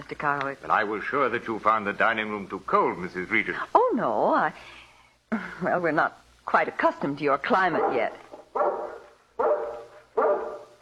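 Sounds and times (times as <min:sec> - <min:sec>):
speech: 0:00.1 - 0:08.8
mountain breed guard dog barking: 0:07.7 - 0:10.8.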